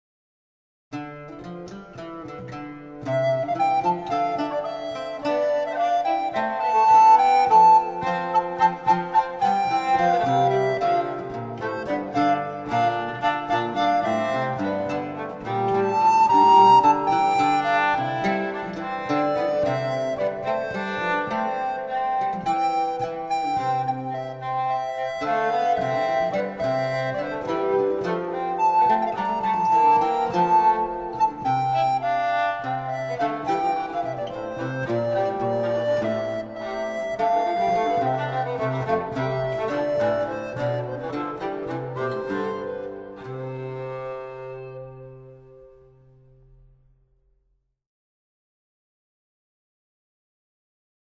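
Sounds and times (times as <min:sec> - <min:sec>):
lute: 0:00.9 - 0:47.2
rebec: 0:01.0 - 0:46.3
flute: 0:01.5 - 0:46.8.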